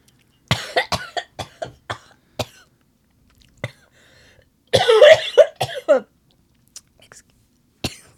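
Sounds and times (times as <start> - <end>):
person coughing after choking on food: 0.5 - 2.7, 4.7 - 6.1, 7.8 - 8.1.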